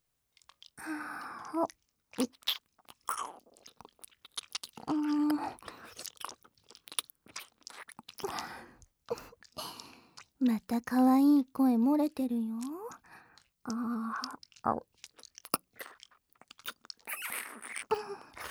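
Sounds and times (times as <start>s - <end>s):
wet ASMR mouth sounds nibbling a left ear: 0.4s - 0.8s, 1.4s - 10.4s, 12.6s - 18.4s
speech: 0.9s - 2.6s, 10.5s - 12.8s, 13.7s - 14.8s.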